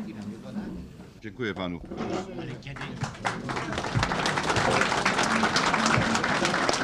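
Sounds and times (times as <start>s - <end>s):
speech: 1.2s - 5.6s
crowd applauding after agreement announcement: 2.7s - 6.8s
murmuring voices: 3.0s - 6.8s.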